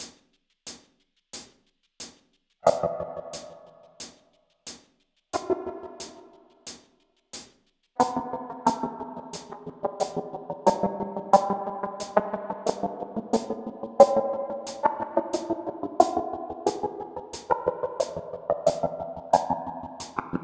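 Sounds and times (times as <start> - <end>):
guitar rhythms with delay effect at 90 BPM: 2.7 - 3.5, 5.4 - 6.2, 8.0 - 20.4.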